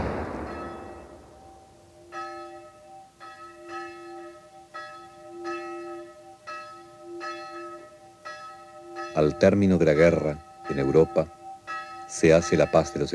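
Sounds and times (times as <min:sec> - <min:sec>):
church bell ringing: 0:00.1 - 0:13.1
speech: 0:09.2 - 0:11.4, 0:12.1 - 0:13.1.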